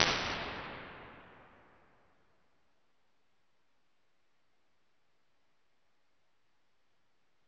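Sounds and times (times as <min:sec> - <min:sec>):
long hall plate reverb impulse response: 0:00.0 - 0:01.9.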